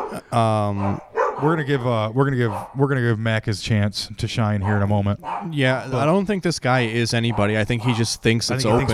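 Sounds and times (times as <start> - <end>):
dog barking at a man at the door: 0.0 - 1.6, 2.4 - 2.8, 4.6 - 6.1, 7.3 - 8.1, 8.7 - 8.9
speech: 0.1 - 8.9.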